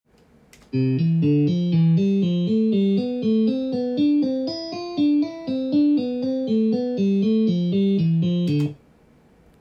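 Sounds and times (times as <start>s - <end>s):
C major sequence on guitar: 0.6s - 8.8s.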